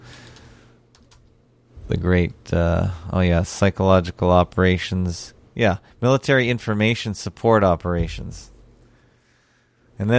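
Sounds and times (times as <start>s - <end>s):
light keystrokes on a computer keyboard: 0.9s - 1.3s
low hum: 1.7s - 3.0s, 7.9s - 9.2s
speech: 1.9s - 8.5s, 10.0s - 10.1s.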